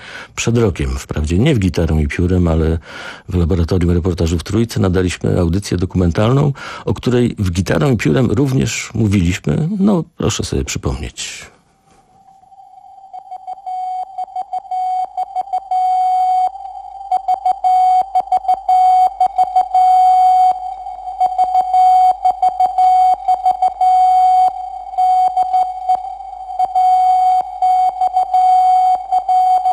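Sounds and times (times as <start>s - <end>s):
speech: 0.4s - 11.6s
Morse code keyed on a single steady mid-pitched tone: 12.9s - 29.7s.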